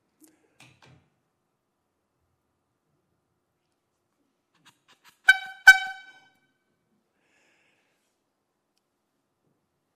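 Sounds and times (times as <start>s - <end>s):
short loud horn honks: 4.9s - 6.4s.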